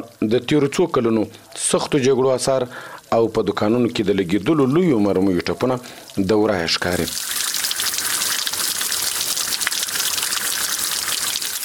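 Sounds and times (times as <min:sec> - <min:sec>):
speech: 0:00.2 - 0:07.4
fresh water rushing through a narrow roadside channel near Kajaki: 0:07.1 - 0:11.6.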